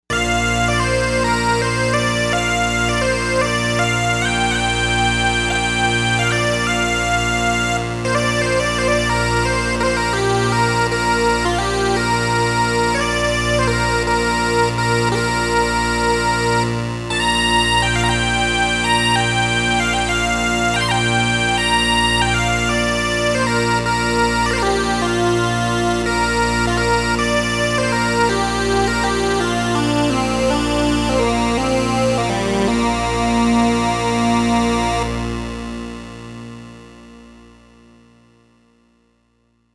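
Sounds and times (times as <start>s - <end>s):
Scottish synth on a Novation UltraNova: 0.1s - 37.4s.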